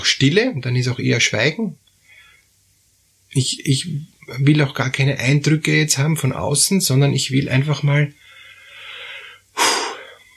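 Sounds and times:
speech: 0.1s - 1.9s, 3.3s - 8.2s
slow deep inhale and airy exhale: 2.0s - 2.5s, 8.2s - 10.3s.

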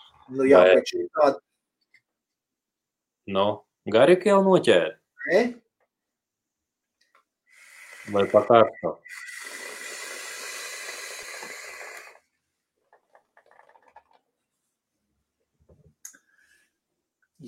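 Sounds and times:
speech: 0.3s - 1.5s, 3.3s - 5.6s, 8.1s - 9.3s
hard airy draw on an e-cigarette vape set to 110 watts: 7.5s - 12.2s.

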